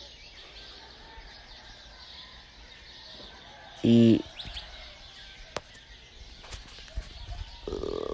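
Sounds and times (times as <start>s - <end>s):
dawn chorus of many kinds of birds chirping at daybreak: 0.0s - 8.1s
loud rooster call: 0.8s - 5.6s
speech: 3.8s - 4.3s.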